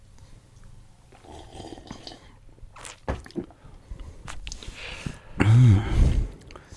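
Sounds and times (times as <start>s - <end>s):
wet mouth noises: 0.6s - 3.6s
slurping sip of a juicy drink: 1.1s - 3.4s.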